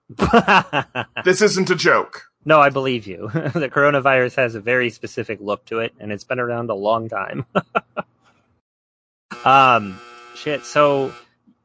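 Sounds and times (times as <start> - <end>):
laughter: 0.1 - 1.4, 3.2 - 4.0, 7.3 - 8.0
speech: 0.1 - 8.1, 9.4 - 11.2
clothes dryer buzzer: 9.3 - 11.4.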